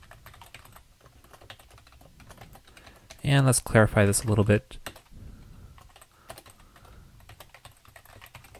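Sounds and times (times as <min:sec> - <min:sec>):
typing a card verification code on a computer keyboard: 0:00.0 - 0:03.2, 0:04.8 - 0:05.1, 0:05.7 - 0:08.5
speech: 0:03.3 - 0:04.8.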